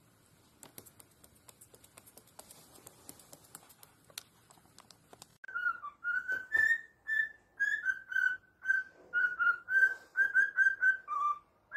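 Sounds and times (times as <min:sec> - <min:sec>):
faint clicks and rustles: 0:00.3 - 0:05.5
several cockatiels singing a whistled song: 0:05.5 - 0:11.7.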